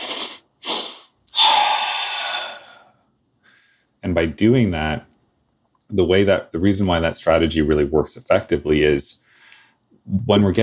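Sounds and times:
deliberate breathing for calming stress: 0.0s - 4.0s, 9.2s - 9.8s
speech: 4.0s - 5.1s, 5.9s - 9.3s, 10.1s - 10.6s.

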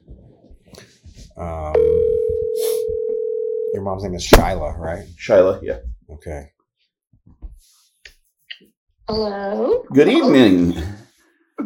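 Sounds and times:
speech: 1.4s - 2.7s, 3.8s - 6.6s, 9.1s - 11.0s
telephone dial tone while placing a call: 1.8s - 3.8s.

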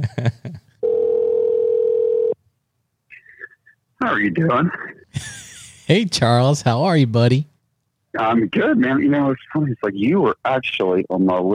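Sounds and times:
electronic phone ringing tone: 0.8s - 2.4s
speech: 4.2s - 7.5s, 8.2s - 11.5s.

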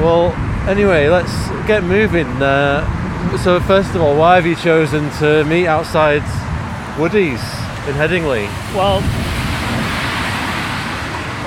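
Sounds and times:
speech: 0.0s - 6.4s, 7.0s - 9.2s
bus passing by on the street in Headingley: 0.0s - 11.4s.

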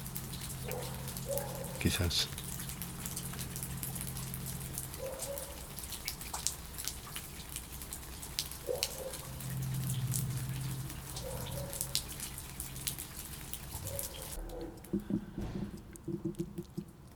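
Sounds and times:
light rain pattering: 0.0s - 17.1s
speech: 1.8s - 2.4s.

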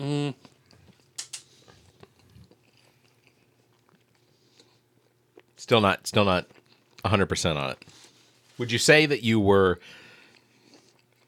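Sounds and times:
person humming: 0.0s - 0.4s
crunchy chewing of crinkle-cut fries from a fried-chicken chain: 0.2s - 8.4s, 9.9s - 11.2s
speech: 5.6s - 8.0s, 8.6s - 10.0s.

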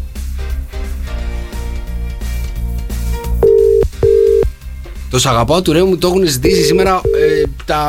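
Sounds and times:
music: 0.0s - 7.8s
outgoing call ringback tone beeps: 3.4s - 4.5s, 6.5s - 7.5s
speech: 5.1s - 7.8s.

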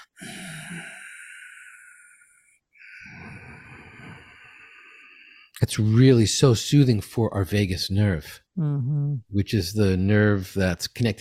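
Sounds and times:
Ujjayi breathing through a constricted throat for meditation: 0.0s - 5.5s
speech: 5.6s - 11.1s.

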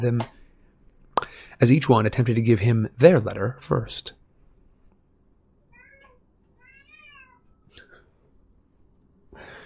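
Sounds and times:
speech: 0.0s - 0.4s, 1.6s - 4.2s
low hum: 0.0s - 9.6s
female cat meowing to be let out of a room: 5.7s - 7.6s.

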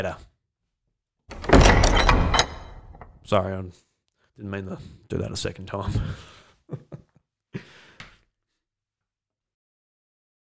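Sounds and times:
speech: 0.0s - 0.3s, 3.3s - 6.9s
door closing with a loud rolling rumble: 1.3s - 3.2s
laughter: 5.8s - 7.9s.

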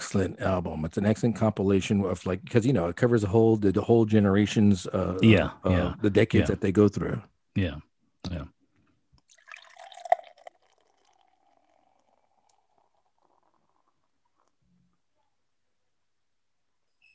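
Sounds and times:
speech: 0.1s - 8.6s
beer pouring into a glass: 9.2s - 15.0s.

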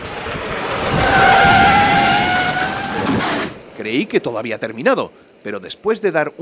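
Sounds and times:
car tires skidding around a sharp curve on a narrow road: 0.0s - 3.6s
car engine rumbling: 0.0s - 5.8s
road noise: 0.0s - 6.4s
speech: 3.9s - 6.4s.

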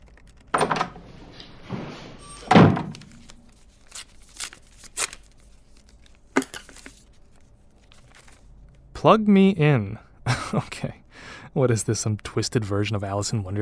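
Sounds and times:
door pushed shut with a heavy low thud: 1.7s - 3.1s
speech: 9.0s - 11.0s, 11.6s - 13.6s.

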